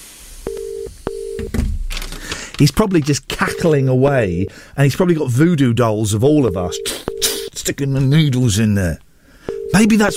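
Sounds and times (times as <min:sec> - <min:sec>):
telephone call ringing tones: 0:00.5 - 0:01.5, 0:03.4 - 0:04.5, 0:06.4 - 0:07.5, 0:09.5 - 0:10.1
speech: 0:02.6 - 0:07.1, 0:07.7 - 0:09.0, 0:09.7 - 0:10.1.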